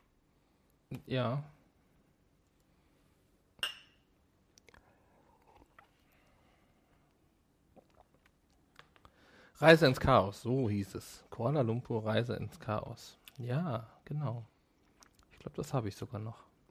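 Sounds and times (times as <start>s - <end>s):
speech: 0.9s - 1.6s, 9.6s - 14.5s, 15.4s - 16.5s
drinking glasses clinking in a toast: 3.6s - 4.0s
glass handling noises: 3.6s - 4.0s.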